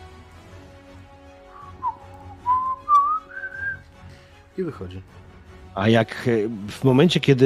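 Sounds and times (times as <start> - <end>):
sergeant whistling a wandering tune softly: 1.6 - 3.8
speech: 4.6 - 7.4.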